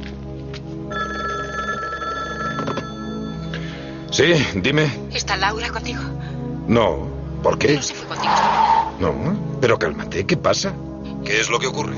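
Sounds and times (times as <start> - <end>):
telephone ringing in a hall: 0.9 - 3.5
speech: 4.2 - 11.9.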